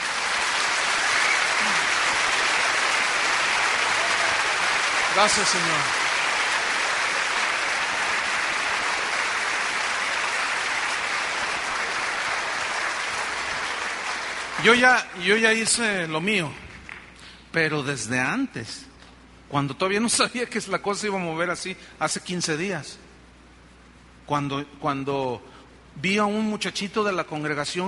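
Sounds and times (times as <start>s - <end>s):
audience applauding: 0.0s - 15.1s
speech: 5.2s - 6.0s, 14.6s - 16.6s, 17.5s - 18.9s, 19.5s - 23.0s, 24.3s - 27.8s.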